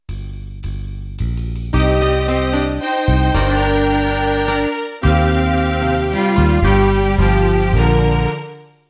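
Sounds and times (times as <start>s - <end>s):
country waltz intro: 1.8s - 8.8s.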